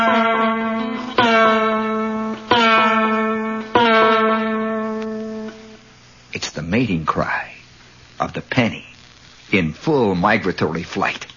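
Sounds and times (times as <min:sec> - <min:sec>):
discordant clanging note ringing with echo: 0:00.0 - 0:05.9
speech: 0:06.8 - 0:07.5, 0:08.2 - 0:08.9, 0:09.5 - 0:11.3.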